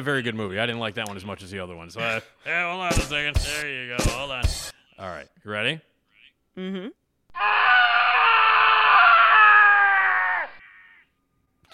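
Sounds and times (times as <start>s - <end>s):
speech: 0.0s - 5.9s, 6.6s - 7.6s
man screaming in anguish sound effect: 7.3s - 11.0s.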